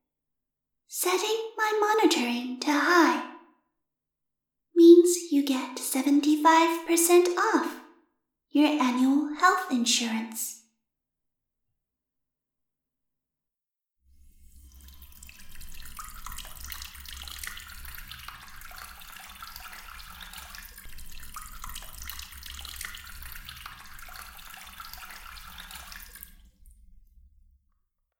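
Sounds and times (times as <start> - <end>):
speech: 0.9 - 3.3, 4.8 - 7.8, 8.5 - 10.6
running water pouring into a basin: 14.1 - 27.5.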